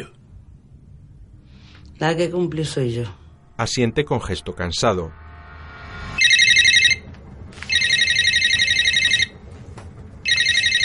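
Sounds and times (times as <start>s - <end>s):
speech: 2.0s - 5.2s
mobile phone electronic ringtone trilling: 6.2s - 7.1s, 7.7s - 9.4s, 10.2s - 10.8s.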